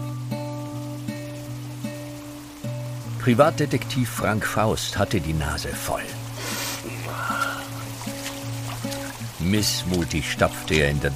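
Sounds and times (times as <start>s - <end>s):
heavy dense rain: 0.0s - 11.1s
speech: 3.2s - 6.6s, 9.4s - 11.1s.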